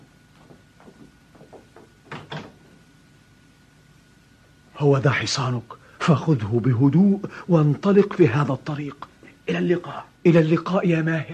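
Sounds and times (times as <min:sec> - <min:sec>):
quiet knocks or footsteps: 0:00.0 - 0:03.0
wooden thumps and clatter: 0:00.4 - 0:02.7
door opening: 0:00.5 - 0:02.8
speech: 0:04.8 - 0:11.3.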